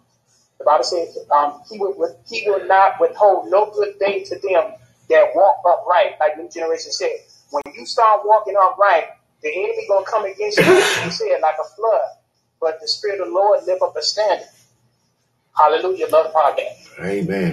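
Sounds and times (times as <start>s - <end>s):
speech: 0.6s - 14.6s, 15.6s - 17.5s
man giving preaching-style speech: 10.6s - 11.2s, 16.9s - 17.5s
person sneezing: 10.6s - 11.2s.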